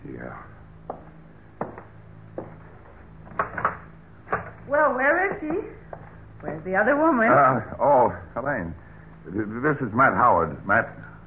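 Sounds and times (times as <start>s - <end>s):
low steady hum: 0.0s - 11.2s
speech: 0.2s - 0.6s, 4.8s - 5.8s, 6.6s - 11.1s
door being pulled open with wooden clunks and latch knocks: 3.3s - 4.7s.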